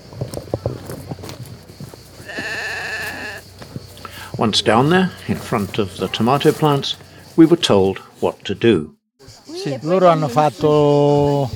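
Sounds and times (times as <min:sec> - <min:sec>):
sheep bleating outdoors on a steep slope: 0:02.2 - 0:03.4, 0:04.6 - 0:06.8
speech: 0:04.4 - 0:09.0, 0:09.6 - 0:11.5.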